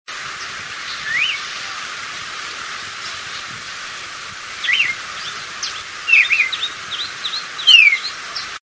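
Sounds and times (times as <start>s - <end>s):
common cardinal call: 0.9s - 1.5s, 4.6s - 8.5s.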